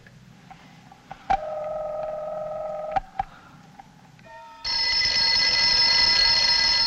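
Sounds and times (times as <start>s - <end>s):
telephone ringing at an athletic club: 1.4s - 3.0s, 4.7s - 6.8s.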